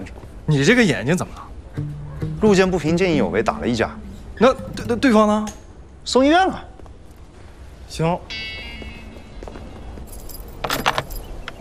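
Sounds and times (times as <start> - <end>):
speech: 0.0 - 6.7, 7.9 - 8.6
bunch of keys jangling: 10.0 - 11.5.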